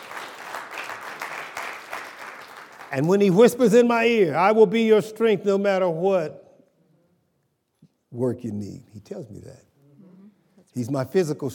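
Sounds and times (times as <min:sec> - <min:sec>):
audience clapping hands: 0:00.0 - 0:03.5
speech: 0:02.9 - 0:06.4, 0:08.1 - 0:09.7, 0:10.8 - 0:11.5.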